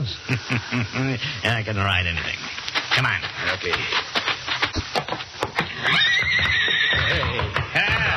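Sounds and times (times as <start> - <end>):
laughter: 0.0 - 1.4, 7.0 - 8.1
speech: 0.0 - 4.2, 5.8 - 7.6
stallion kicking its stall in a barn: 4.1 - 8.1
stallion whinnying: 5.7 - 8.1.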